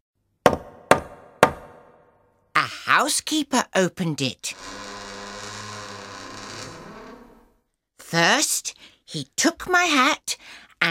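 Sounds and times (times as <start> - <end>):
knocking on the wooden door of a house: 0.5 - 1.9
speech: 2.9 - 4.8, 8.1 - 10.8.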